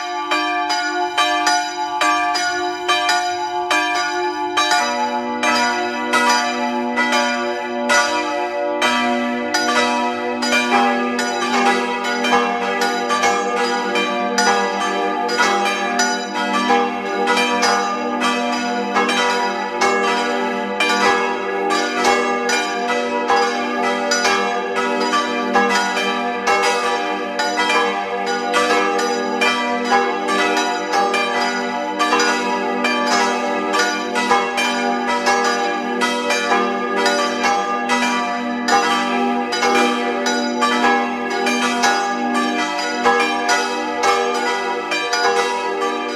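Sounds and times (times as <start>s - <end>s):
parish church bells in Tattendorf Lower Austria ringing at noon: 0.0s - 46.1s.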